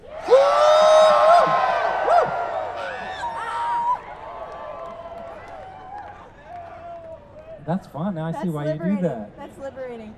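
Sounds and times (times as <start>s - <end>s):
group of people yelling together: 0.0s - 4.0s
speech: 7.8s - 10.1s.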